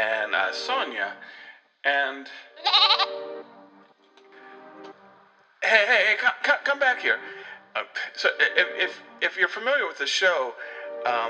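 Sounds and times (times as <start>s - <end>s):
speech: 0.4s - 3.6s, 5.6s - 11.2s
goats bleating: 2.6s - 3.2s.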